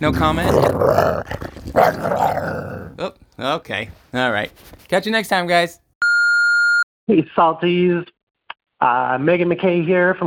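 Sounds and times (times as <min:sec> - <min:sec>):
dog growling: 0:00.0 - 0:03.2
speech: 0:00.0 - 0:05.8, 0:07.1 - 0:08.2, 0:08.8 - 0:10.2.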